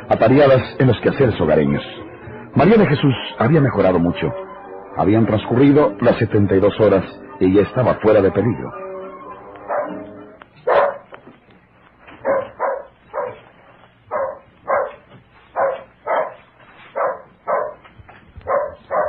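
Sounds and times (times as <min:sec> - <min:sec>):
speech: 0:00.1 - 0:08.8
dog barking as if at a stranger: 0:09.7 - 0:10.0, 0:10.6 - 0:11.1, 0:12.2 - 0:13.5, 0:14.1 - 0:19.0.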